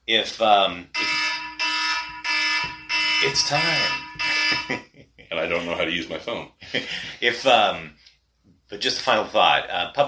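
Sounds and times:
speech: 0.1s - 1.2s, 3.2s - 8.0s, 8.7s - 10.0s
kitchen timer alarm with buzzy electronic tones: 1.0s - 4.9s.

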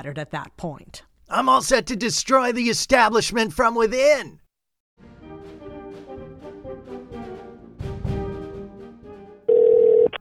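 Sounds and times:
speech: 0.0s - 4.4s
music: 5.0s - 10.1s
telephone ringing with an electronic trill: 9.5s - 10.1s.

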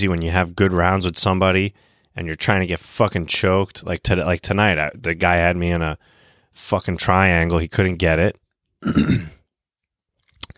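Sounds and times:
speech: 0.0s - 9.4s
man clearing his throat with a rough gravelly rasp: 8.8s - 9.4s
faint mouth clicks and smacks: 10.2s - 10.5s.

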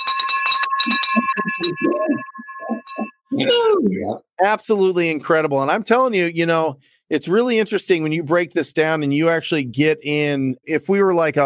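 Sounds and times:
small bell ringing to celebrate a sale: 0.0s - 3.2s
speech: 3.4s - 11.4s.

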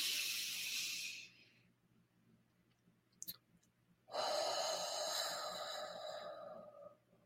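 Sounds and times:
long soft exhale during a breathing exercise: 0.0s - 1.4s, 4.1s - 7.0s.

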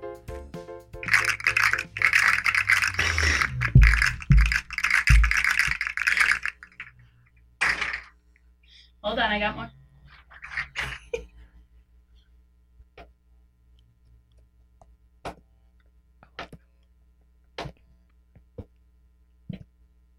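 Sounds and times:
small plastic fidget toys rattling and clicking: 1.0s - 7.0s, 7.6s - 8.1s.

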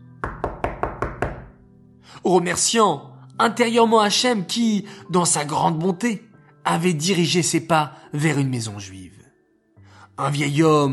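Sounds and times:
quick firm knocks on a wooden door: 0.2s - 1.6s
speech: 2.1s - 9.2s, 10.2s - 10.9s.

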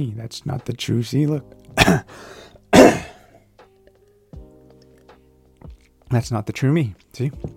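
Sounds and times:
speech: 0.0s - 3.1s, 6.1s - 7.5s
person clearing throat: 1.8s - 3.4s.

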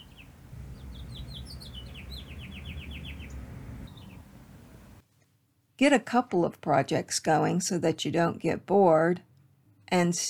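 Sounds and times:
bird singing descending chirps and trill: 0.0s - 5.0s
low constant rumble: 0.0s - 5.0s
speech: 5.8s - 9.3s, 9.9s - 10.2s.

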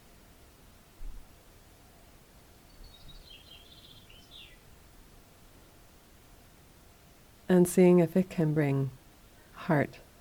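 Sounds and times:
steady hiss of outdoor noise: 0.0s - 10.1s
birdsong with high warbling phrase: 2.6s - 4.7s
speech: 7.5s - 9.0s, 9.6s - 10.0s.

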